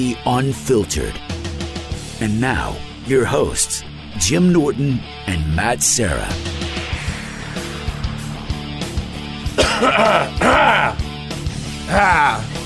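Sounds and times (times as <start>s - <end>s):
speech: 0.0s - 1.3s, 2.2s - 6.6s, 9.8s - 11.0s, 11.9s - 12.5s
steady music: 0.0s - 12.6s
person coughing: 9.6s - 10.9s.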